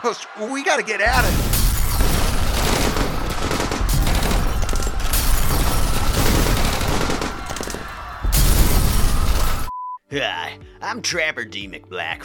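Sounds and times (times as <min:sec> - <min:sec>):
speech: 0:00.0 - 0:01.6, 0:10.1 - 0:12.2
staged rapid machine-gun bursts: 0:01.1 - 0:08.2
staged rapid overlapping gunshots: 0:01.1 - 0:09.7.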